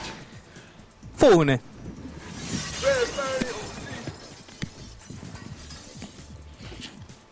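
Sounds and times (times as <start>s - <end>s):
speech: 1.2s - 1.7s
record fragments tinkling and clattering: 1.8s - 6.4s
record deliberately smashed: 2.2s - 6.2s.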